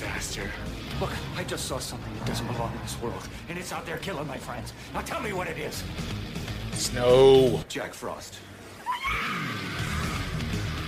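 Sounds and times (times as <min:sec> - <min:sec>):
speech: 0:01.0 - 0:08.5, 0:09.1 - 0:09.7
loud shrill stock movie scream sound effect: 0:08.8 - 0:10.8.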